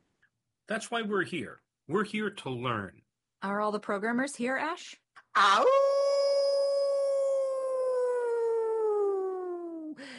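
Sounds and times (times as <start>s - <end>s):
speech: 0.7s - 5.9s
coyote howling: 5.4s - 9.8s.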